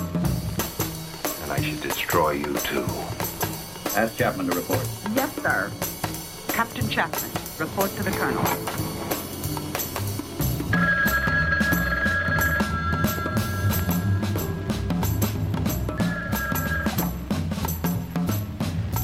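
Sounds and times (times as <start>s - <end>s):
music: 0.0s - 19.0s
speech: 1.5s - 3.3s, 4.0s - 6.0s, 6.6s - 8.9s
telephone ringing in trilling bursts: 10.7s - 14.7s, 15.9s - 17.2s.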